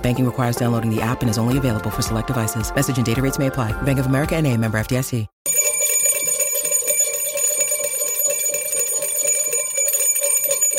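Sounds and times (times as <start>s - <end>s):
speech: 0.0s - 5.6s
bright metallic bell ringing rapidly: 5.5s - 10.7s.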